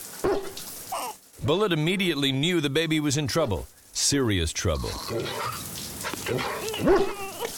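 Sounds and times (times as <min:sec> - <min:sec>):
old dog barking: 0:00.2 - 0:00.6, 0:06.1 - 0:07.5
speech: 0:01.4 - 0:05.7, 0:06.3 - 0:07.2.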